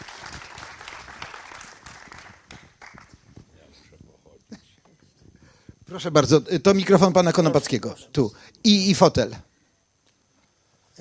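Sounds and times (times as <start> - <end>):
audience clapping: 0.0 - 3.8
speech: 5.9 - 9.5.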